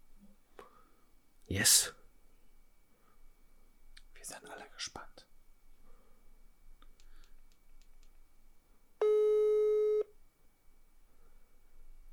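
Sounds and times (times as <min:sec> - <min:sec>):
speech: 0:01.5 - 0:02.0, 0:04.2 - 0:05.0
phone call ringback tone placed through an app: 0:09.0 - 0:10.1.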